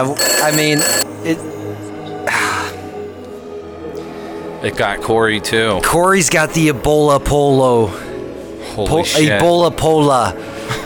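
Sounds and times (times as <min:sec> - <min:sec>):
old rotary landline telephone bell trilling: 0:00.0 - 0:01.1
speech: 0:00.0 - 0:01.6, 0:04.6 - 0:08.0, 0:08.8 - 0:10.5.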